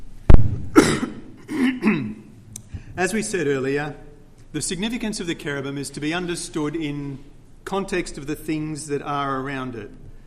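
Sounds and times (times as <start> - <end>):
harsh coughs with a throat-clearing quality: 0.7 - 2.2
speech: 3.0 - 10.0.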